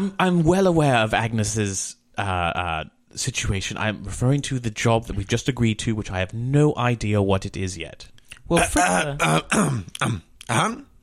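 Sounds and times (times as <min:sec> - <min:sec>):
speech: 0:00.0 - 0:10.9
voice imitating a cough from a medium-sized reddish-tinted gelt: 0:08.6 - 0:10.9.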